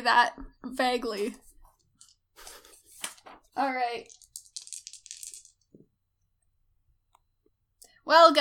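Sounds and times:
speech: 0.0s - 1.4s, 3.6s - 4.2s, 8.1s - 8.4s
dice rattling across a hard table: 1.7s - 5.8s.

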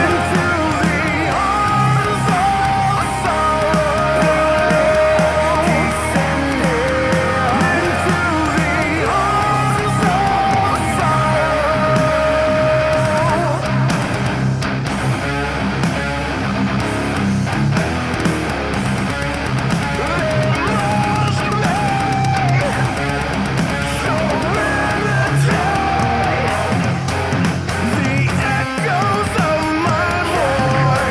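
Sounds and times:
male vocalist screaming harsh metal vocals: 0.0s - 13.9s, 19.8s - 31.1s
heavy distorted guitars: 0.0s - 31.1s.

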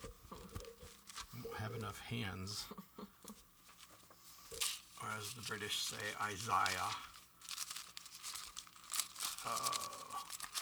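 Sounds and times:
thin Bible paper pages rustling and turning: 0.2s - 1.4s, 3.6s - 10.5s
speech: 1.6s - 2.9s, 5.0s - 7.1s, 9.4s - 10.0s.

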